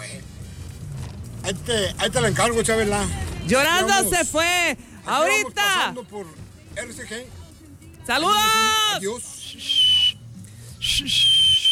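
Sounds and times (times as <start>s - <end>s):
low hum: 0.0s - 11.7s
speech: 1.5s - 7.4s, 8.0s - 9.8s, 11.0s - 11.4s
man whistling high steady notes: 9.3s - 11.7s.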